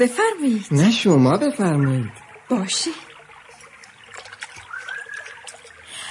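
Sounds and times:
speech: 0.0s - 3.1s
water from a forest spring trickling and splashing: 0.0s - 6.0s
faint bird-like whistle: 4.6s - 5.5s.

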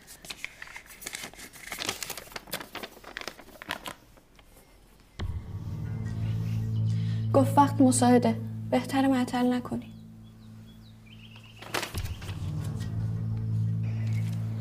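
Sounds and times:
paper letter being unfolded and crinkled: 0.0s - 5.0s, 11.4s - 14.5s
steady low drone: 5.2s - 14.5s
speech: 7.4s - 9.9s.

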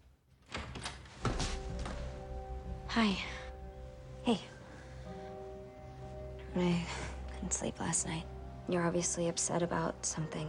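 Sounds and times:
front door being opened indoors: 0.4s - 2.2s
speech: 3.0s - 3.4s, 4.2s - 4.6s, 6.6s - 10.4s.

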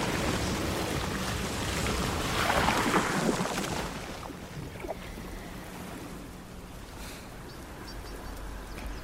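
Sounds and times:
water gushing up from under ice: 0.0s - 5.2s.

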